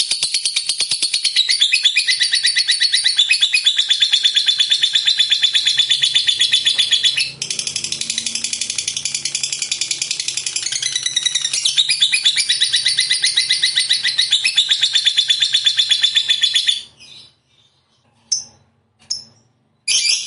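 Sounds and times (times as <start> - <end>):
fighter-type lovebird chattering trill: 0.2 - 17.3.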